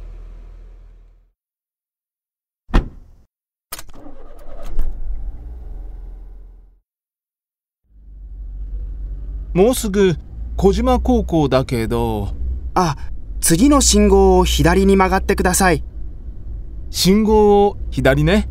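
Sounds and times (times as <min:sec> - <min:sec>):
car engine turning over and pulling away: 0:00.0 - 0:01.2, 0:03.8 - 0:06.8, 0:08.0 - 0:18.5
thud: 0:02.7 - 0:03.2
low vehicle rumble: 0:04.2 - 0:06.8, 0:07.9 - 0:18.5
speech: 0:09.6 - 0:15.9, 0:16.9 - 0:18.5.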